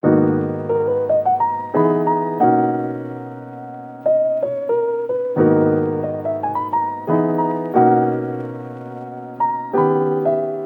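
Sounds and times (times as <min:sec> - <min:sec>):
dry piano playing in G sharp minor: 0:00.0 - 0:10.6.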